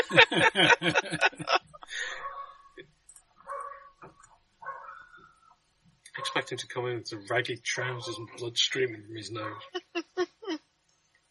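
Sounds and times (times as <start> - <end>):
laughter: 0.0 - 2.2, 6.2 - 10.2
speech: 0.1 - 1.5, 6.5 - 9.8
dog barking: 2.1 - 2.5, 3.5 - 3.9, 4.6 - 5.1, 6.2 - 6.5, 9.4 - 9.7.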